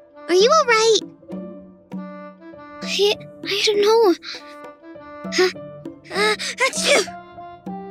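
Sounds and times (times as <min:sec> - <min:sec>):
speech: 0:00.3 - 0:01.2, 0:02.9 - 0:04.6, 0:05.2 - 0:07.2
loud voiced sneeze: 0:06.2 - 0:07.1.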